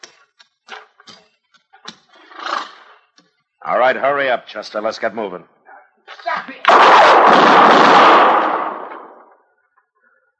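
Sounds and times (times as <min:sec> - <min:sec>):
speech: 0:03.7 - 0:05.6
gunshot from an alley: 0:06.7 - 0:09.3.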